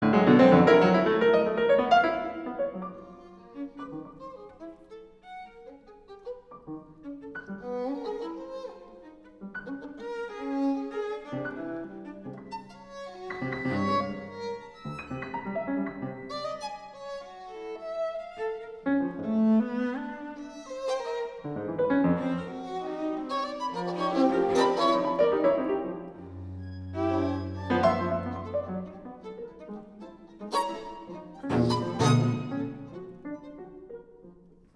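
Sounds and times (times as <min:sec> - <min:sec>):
quintet for piano and string quartet: 0:00.0 - 0:34.7.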